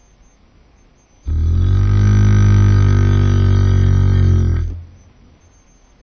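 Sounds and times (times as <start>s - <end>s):
Edmontosaurus dinosaur roars: 1.3s - 5.1s.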